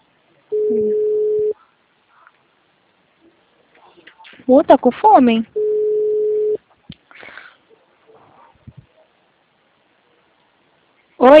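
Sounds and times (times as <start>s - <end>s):
telephone tone after a dropped call: 0.5s - 1.6s, 5.6s - 6.6s
speech: 4.5s - 5.6s.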